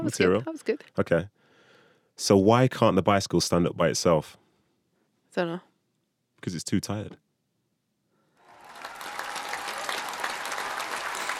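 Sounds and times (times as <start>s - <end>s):
speech: 0.0s - 1.4s, 2.2s - 4.4s, 5.3s - 5.7s, 6.4s - 7.2s
studio audience applause, many hands clapping: 8.4s - 11.3s.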